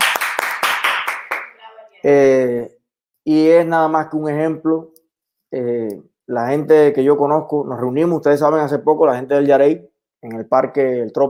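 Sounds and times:
applause: 0.0 - 1.6
sharp louder claps: 0.0 - 1.6
speech: 2.0 - 11.2.

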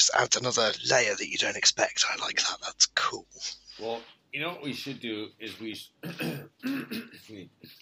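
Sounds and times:
speech: 0.0 - 7.8
person clearing throat: 6.0 - 7.4
person coughing: 6.0 - 7.4.

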